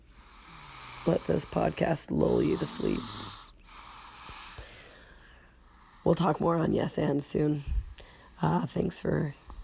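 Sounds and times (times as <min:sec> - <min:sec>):
small baby snorts: 0:00.2 - 0:04.7
speech: 0:01.0 - 0:03.4, 0:06.1 - 0:07.8, 0:08.4 - 0:09.4.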